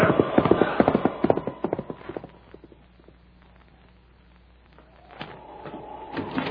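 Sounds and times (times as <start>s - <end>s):
horse hooves clip-clopping: 0.0s - 3.2s
low rumble: 0.0s - 6.5s.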